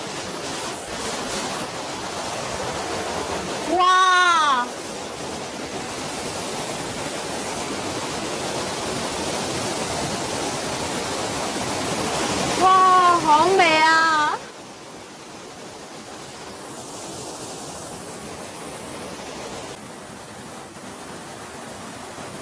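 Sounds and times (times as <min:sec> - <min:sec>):
waterfall rushing: 0:00.0 - 0:22.4
person exclaiming: 0:03.7 - 0:04.7.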